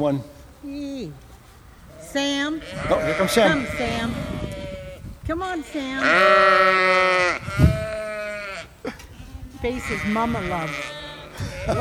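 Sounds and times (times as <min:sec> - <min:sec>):
speech: 0:00.0 - 0:01.3, 0:02.1 - 0:04.4, 0:05.3 - 0:07.7, 0:09.6 - 0:11.0
faint rustle: 0:00.1 - 0:11.7
sheep bleating: 0:02.0 - 0:05.0, 0:05.6 - 0:08.7, 0:09.6 - 0:11.7.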